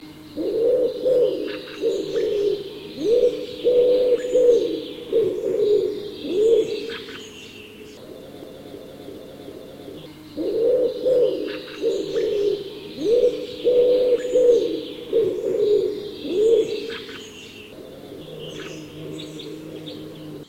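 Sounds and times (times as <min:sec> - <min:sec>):
wood pigeon: 0:00.4 - 0:07.2, 0:08.0 - 0:20.4.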